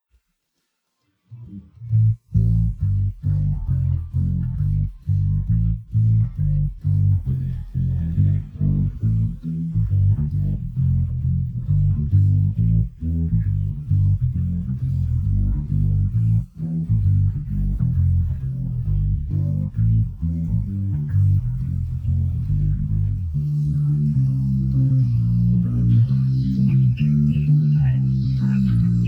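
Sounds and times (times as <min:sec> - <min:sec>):
bass excerpt: 0:01.3 - 0:29.0.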